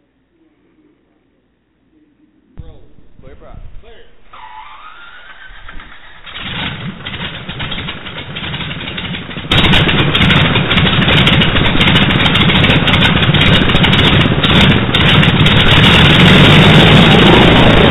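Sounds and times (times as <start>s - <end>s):
R-2800 radial aircraft engine starting and idling: 2.6s - 17.8s
whirring starter of an R-2800 radial aircraft engine: 4.3s - 17.8s.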